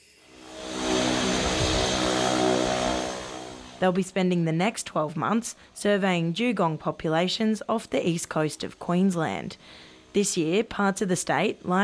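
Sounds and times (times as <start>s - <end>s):
research aircraft engine at airport preparing for takeoff: 0.1s - 4.0s
speech: 3.8s - 11.8s.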